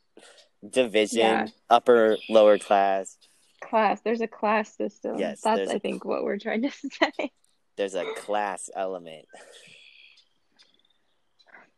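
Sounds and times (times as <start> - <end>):
faint outdoor birdsong: 0.0 - 4.2, 7.0 - 11.7
speech: 0.6 - 9.7
laughter: 0.7 - 3.0, 5.2 - 7.2, 7.8 - 9.2.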